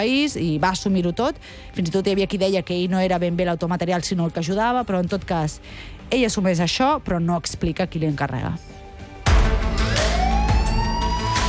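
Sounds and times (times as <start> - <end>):
speech: 0.0 - 8.8
emergency vehicle sirens: 9.7 - 11.4.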